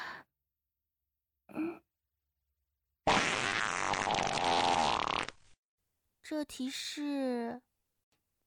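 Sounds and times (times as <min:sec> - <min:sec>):
sputtering fart from a gassy student during an exam: 0:03.1 - 0:05.4
speech: 0:06.3 - 0:07.7.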